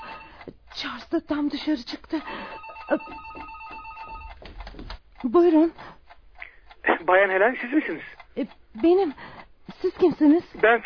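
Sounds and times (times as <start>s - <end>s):
faint electronic telephone ring: 0.0s - 0.5s, 2.2s - 4.4s
speech: 0.8s - 3.5s, 5.2s - 5.9s, 7.1s - 10.8s.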